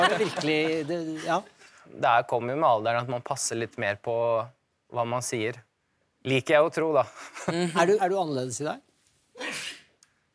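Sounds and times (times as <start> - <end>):
laughter: 0.0 - 1.7, 7.2 - 8.2
speech: 0.1 - 9.8
person sneezing: 9.4 - 9.9.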